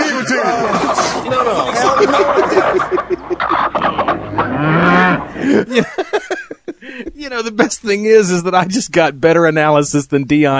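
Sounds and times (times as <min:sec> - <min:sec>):
chickens clucking loudly: 0:00.0 - 0:05.6
laughter: 0:00.0 - 0:09.0
pigs grunting: 0:00.5 - 0:05.7
drawn-out sliding low cries: 0:00.9 - 0:05.5
speech: 0:07.6 - 0:10.5.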